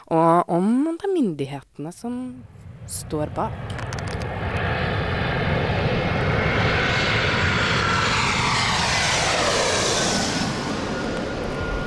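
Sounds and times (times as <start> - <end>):
speech: 0.1 - 4.6
passenger airplane flying overhead: 2.4 - 11.8.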